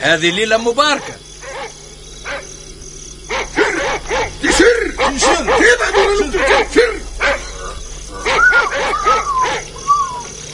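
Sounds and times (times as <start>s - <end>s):
speech: 0.0s - 1.3s, 5.1s - 7.4s
steady high-pitched insect-like buzz: 0.0s - 10.5s
dog barking: 1.4s - 2.5s, 3.3s - 4.6s, 8.2s - 9.7s.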